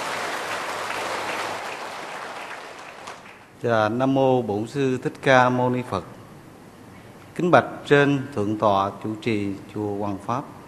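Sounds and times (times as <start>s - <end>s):
audience applauding at a Buddhist temple retreat gathering: 0.0s - 3.5s
speech: 3.6s - 6.2s, 7.4s - 10.6s.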